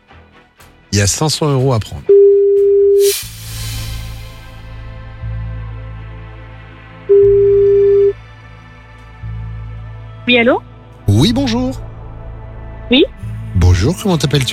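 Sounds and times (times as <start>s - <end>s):
speech: 0.9s - 2.2s, 3.0s - 3.4s, 10.3s - 11.8s, 12.9s - 13.1s, 13.8s - 14.5s
telephone ringback tone as a radio phone-in contest calls a listener: 2.1s - 3.0s, 7.1s - 8.2s.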